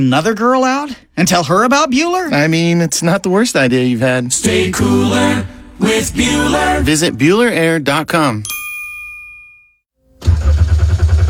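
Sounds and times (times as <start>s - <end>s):
speech: 0.0s - 8.6s
chiming ding: 8.4s - 9.9s
car engine cranking but failing to start: 10.2s - 11.2s.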